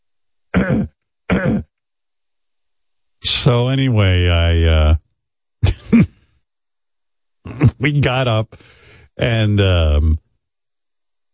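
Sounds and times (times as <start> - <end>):
person clearing throat: 0.5 - 1.8, 5.6 - 6.3, 7.4 - 7.8
speech: 0.7 - 0.9, 3.5 - 5.0, 7.8 - 10.2.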